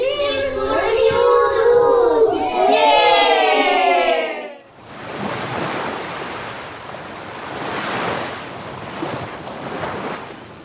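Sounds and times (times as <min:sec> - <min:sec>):
bright warbling tones: 0:00.0 - 0:03.2
ocean waves breaking on shore: 0:03.0 - 0:10.6.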